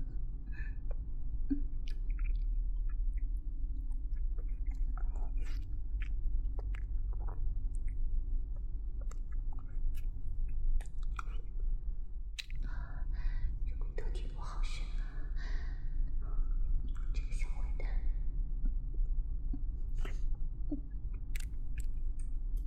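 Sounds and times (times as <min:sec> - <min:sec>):
low steady hum: 0:00.0 - 0:22.6
person chewing and eating a chicken cutlet: 0:00.8 - 0:11.6, 0:12.3 - 0:13.0, 0:18.6 - 0:22.6.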